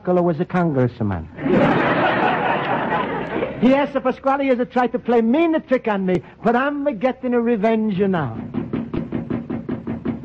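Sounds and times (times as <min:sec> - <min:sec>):
speech: 0:00.0 - 0:01.8, 0:03.6 - 0:08.6
laughter: 0:01.4 - 0:03.8
pounding on the locked doors of a store: 0:08.3 - 0:10.2.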